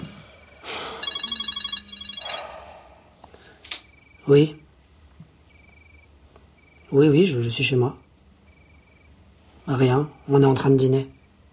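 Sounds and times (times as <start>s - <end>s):
breathy noises: 0.0s - 4.0s
telephone ringing at home with warbling pulsed electronic tone: 0.3s - 2.5s, 3.7s - 4.4s, 5.5s - 6.9s, 8.5s - 9.1s
speech: 4.2s - 4.6s, 6.9s - 8.0s, 9.7s - 11.2s.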